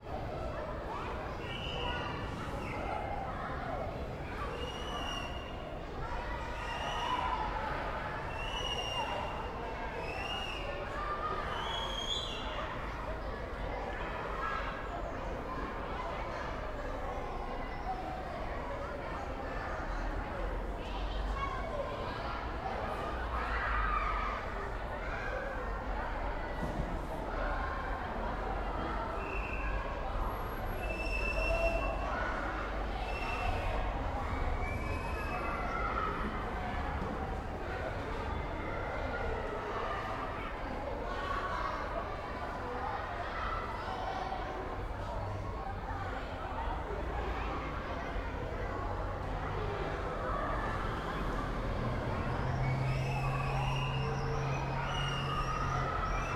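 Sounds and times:
children walla in a city schoolyard: 0:00.0 - 0:56.3.

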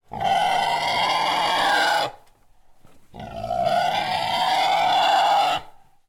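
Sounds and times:
pig squealing: 0:00.1 - 0:02.2, 0:03.2 - 0:05.8.

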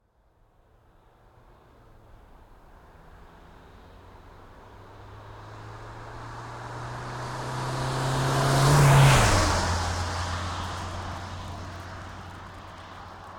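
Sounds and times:
Renault Master III dCi135 van passing by at high RPM and high speed: 0:04.7 - 0:13.3.

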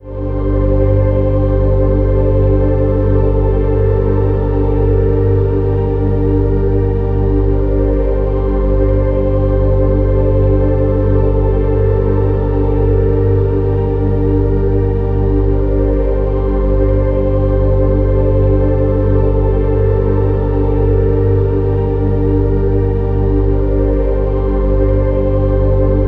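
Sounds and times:
ambient melodic synth texture: 0:00.0 - 0:26.0.

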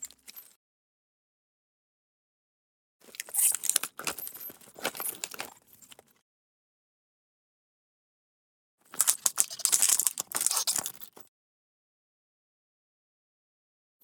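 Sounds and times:
ice cube tray squeaking and creaking: 0:03.2 - 0:04.4, 0:09.2 - 0:10.9.

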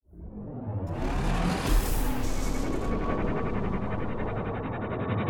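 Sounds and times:
podracer turbine engine starting and accelerating: 0:00.1 - 0:05.2.

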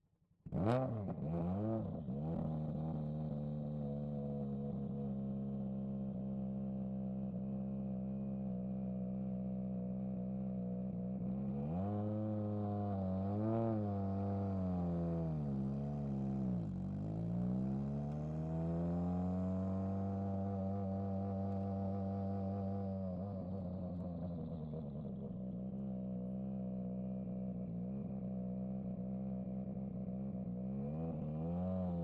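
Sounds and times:
Ford Puma Hybrid Rally1 2022 WRC car exhaust onboard driving and launch control: 0:00.0 - 0:32.0.

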